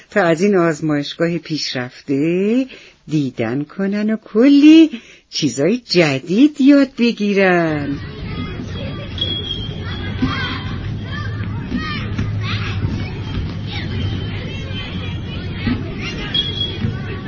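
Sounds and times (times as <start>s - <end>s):
speech: 0.1s - 8.2s
crowd of schoolchildren chattering visiting a laboratory: 7.8s - 17.2s.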